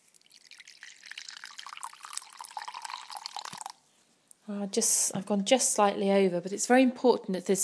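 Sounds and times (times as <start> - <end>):
water pouring into a bowl: 0.0 - 3.8
speech: 4.5 - 7.6.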